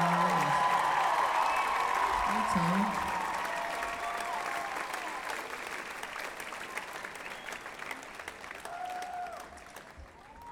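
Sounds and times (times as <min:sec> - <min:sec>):
scattered whoops: 0:00.0 - 0:05.4, 0:08.6 - 0:10.5
crowd applauding and cheering: 0:00.0 - 0:10.5
speech: 0:02.5 - 0:03.0.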